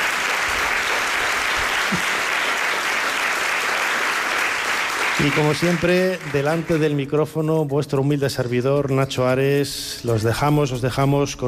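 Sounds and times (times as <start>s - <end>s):
audience applause: 0.0s - 7.1s
speech: 1.9s - 2.1s, 5.2s - 11.4s.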